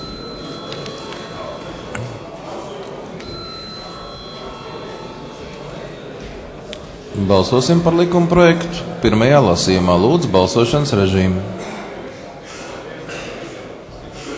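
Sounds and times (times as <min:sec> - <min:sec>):
bell ringing in a parliament chamber before a vote: 0:00.0 - 0:02.2, 0:03.2 - 0:05.9
dense noisy sound in a parliament chamber: 0:00.0 - 0:14.3
speech: 0:07.2 - 0:11.7.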